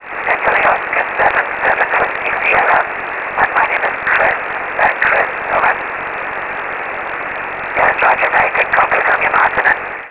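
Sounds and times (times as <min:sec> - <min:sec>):
50MHz SSB radio signal with aurora: 0:00.0 - 0:10.1.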